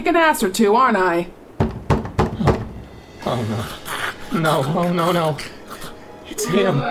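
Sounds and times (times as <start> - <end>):
speech: 0.0 - 1.4, 3.3 - 5.6, 6.4 - 6.9
loud heavy knocking on a door: 1.6 - 2.9.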